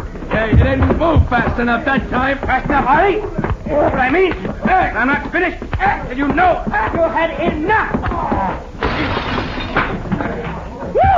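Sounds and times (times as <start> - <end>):
dense noisy background: 0.0 - 11.1
speech: 0.4 - 9.2
plate glass mirror shattering during a fistfight: 8.8 - 10.0.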